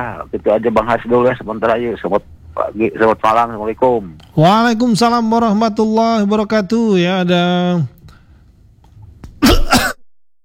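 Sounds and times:
speech: 0.0 - 8.0
harsh coughing: 9.4 - 10.0.

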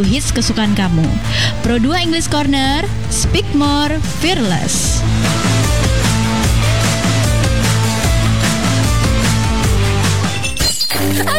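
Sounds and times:
speech: 0.0 - 5.6, 11.1 - 11.3
loud steady music: 0.0 - 11.3
glass flower vase smashing: 10.4 - 11.2.

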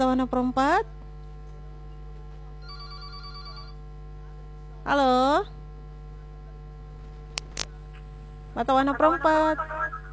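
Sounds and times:
speech: 0.1 - 1.0, 4.9 - 5.6, 8.6 - 9.8
phone ringtone of an incoming WhatsApp call: 2.6 - 3.8.

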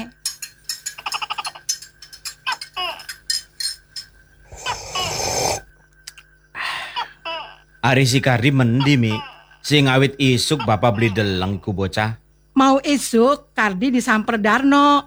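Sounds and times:
cup of coffee and plate of fried bananas clinking as set down on a table: 0.0 - 5.6
speech: 7.9 - 15.0.

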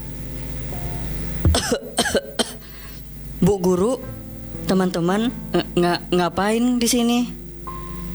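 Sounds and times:
person coughing inside a nearly collapsing house: 1.5 - 2.6
speech: 1.7 - 2.3, 3.4 - 7.4.

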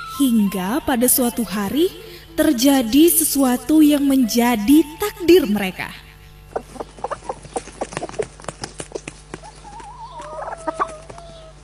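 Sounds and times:
speech: 0.2 - 6.0
mother hen clucking: 6.2 - 11.6.

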